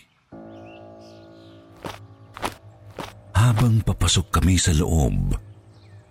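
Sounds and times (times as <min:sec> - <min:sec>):
heavy footsteps thudding across a floor: 0:01.8 - 0:03.7
speech: 0:03.4 - 0:05.5.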